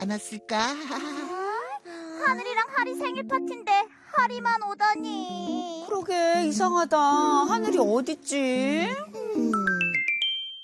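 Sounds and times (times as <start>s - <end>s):
speech: 0.0s - 1.4s, 2.2s - 9.7s
bright melodic phone ringtone: 9.6s - 10.6s.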